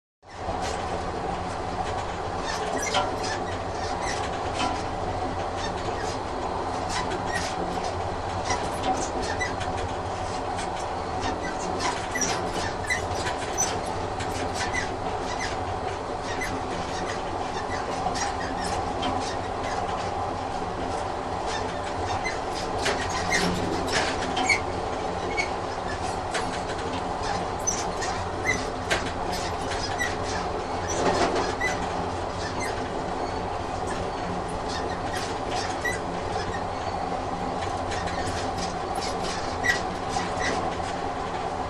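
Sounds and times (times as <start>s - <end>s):
diesel train interior constant rumble: 0.3s - 41.6s.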